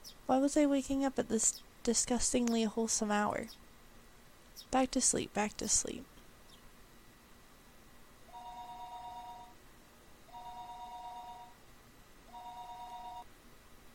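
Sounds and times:
low hiss: 0:00.0 - 0:13.9
speech: 0:00.3 - 0:03.6, 0:04.7 - 0:06.1
telephone ringing with electronic two-tone bursts: 0:08.3 - 0:09.6, 0:10.3 - 0:11.6, 0:12.3 - 0:13.3.

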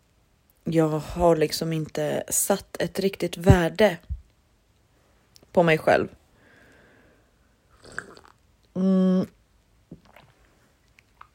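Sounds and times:
speech: 0:00.7 - 0:04.1, 0:05.6 - 0:06.2, 0:08.8 - 0:09.4
person slurping coffee: 0:07.7 - 0:08.4, 0:10.0 - 0:10.5
swallowing coffee: 0:07.7 - 0:08.4, 0:09.2 - 0:11.3.

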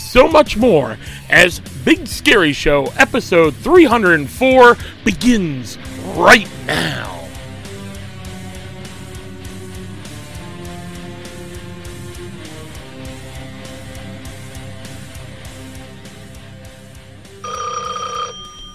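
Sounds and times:
steady musical bed: 0:00.0 - 0:18.7
speech: 0:00.1 - 0:07.2
shrill telephone bell ringing: 0:17.4 - 0:18.7.

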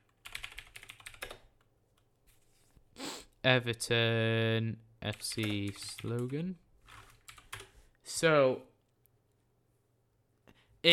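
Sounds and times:
typing on a computer keyboard: 0:00.0 - 0:01.7, 0:05.1 - 0:07.7
speech: 0:03.4 - 0:06.6, 0:08.1 - 0:08.7.

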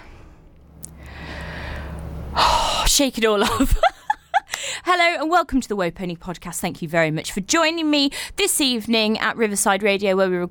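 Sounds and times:
deep breath: 0:00.0 - 0:02.8
speech: 0:03.0 - 0:03.9, 0:04.9 - 0:10.4
laughter: 0:03.4 - 0:04.6.

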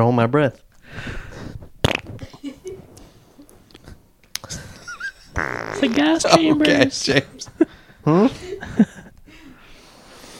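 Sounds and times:
speech: 0:00.0 - 0:01.5, 0:05.4 - 0:08.9
sputtering fart while holding a breath: 0:01.8 - 0:02.4, 0:05.0 - 0:06.7
laughter: 0:02.2 - 0:03.5, 0:04.5 - 0:09.2.

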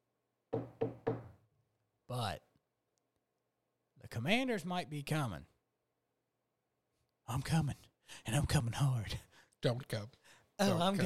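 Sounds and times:
knocks on a wooden surface: 0:00.5 - 0:01.4
speech: 0:02.1 - 0:02.5, 0:04.2 - 0:05.5, 0:07.3 - 0:11.0.

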